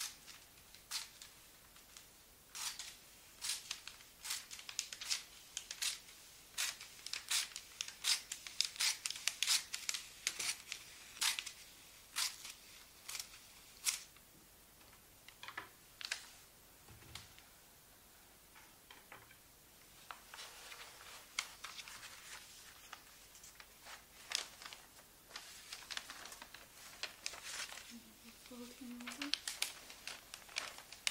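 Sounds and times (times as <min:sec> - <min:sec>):
gift wrapping paper crinkling and rustling: 0:02.6 - 0:14.1, 0:20.0 - 0:31.0
paper snips while wrapping gifts: 0:02.6 - 0:14.1.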